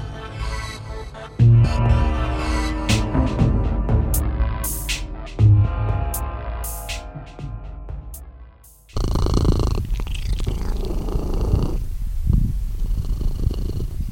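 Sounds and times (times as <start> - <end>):
quiet music: 0.0 - 9.0
kitten purring: 8.9 - 14.1.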